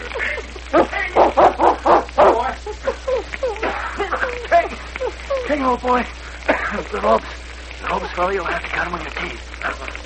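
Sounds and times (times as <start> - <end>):
laughter: 0.0 - 8.8, 9.6 - 10.0
Malamute barking, whining, yipping and yelping: 1.2 - 2.6
speech: 5.7 - 9.9.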